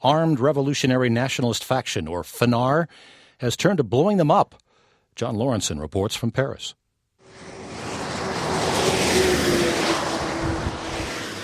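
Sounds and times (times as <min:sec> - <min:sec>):
speech: 0:00.0 - 0:04.6, 0:05.2 - 0:06.8
faint engine whine: 0:07.2 - 0:11.4
road traffic entering a small village north of Paris France: 0:07.2 - 0:11.4
vehicle passing a speed camera: 0:07.2 - 0:11.4.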